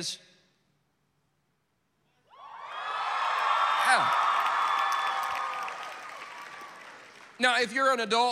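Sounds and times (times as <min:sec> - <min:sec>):
speech: 0:00.0 - 0:00.3, 0:03.9 - 0:04.2, 0:07.4 - 0:08.2
shrill whoops from high school students: 0:02.3 - 0:07.0
large crowd of high school students screaming and cheering: 0:02.3 - 0:07.4.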